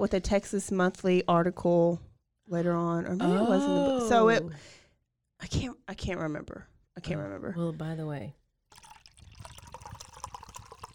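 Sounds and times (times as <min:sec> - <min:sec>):
speech: 0:00.0 - 0:04.8, 0:05.4 - 0:08.4
liquid pouring into a glass: 0:08.7 - 0:10.9.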